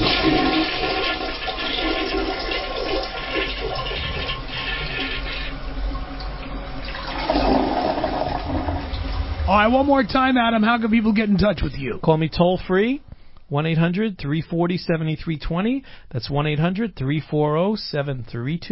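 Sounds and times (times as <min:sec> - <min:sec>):
toilet flushing: 0:00.0 - 0:12.0
speech: 0:09.6 - 0:18.6.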